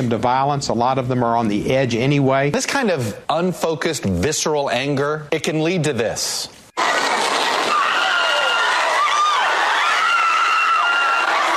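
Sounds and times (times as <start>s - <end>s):
speech: 0.0s - 6.9s
people screaming and shrieking as a car plows into a crowd: 6.8s - 11.5s.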